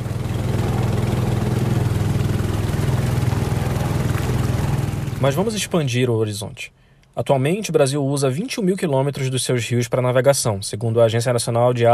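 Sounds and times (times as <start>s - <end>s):
small boat's outboard motor droning: 0.0s - 6.0s
speech: 5.2s - 11.9s.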